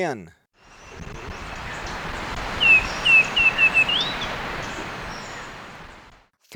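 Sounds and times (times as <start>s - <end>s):
Black-and-white becard calling in Ecuador: 1.8s - 6.0s.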